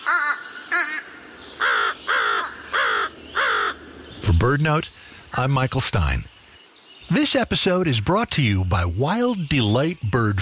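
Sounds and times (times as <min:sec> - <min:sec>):
fish crow nasal caws: 0:00.0 - 0:03.9
speech: 0:04.4 - 0:06.3, 0:07.1 - 0:10.4.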